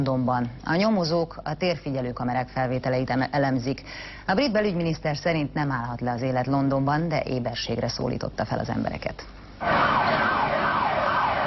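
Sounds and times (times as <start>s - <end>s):
speech: 0.0s - 10.2s
police car sirens wailing in central London: 9.6s - 11.4s.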